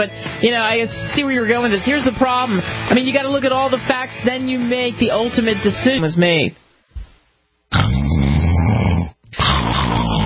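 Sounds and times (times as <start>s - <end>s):
speech: 0.0s - 6.6s
person snoring loudly with rasping rumbling snores: 7.7s - 10.2s.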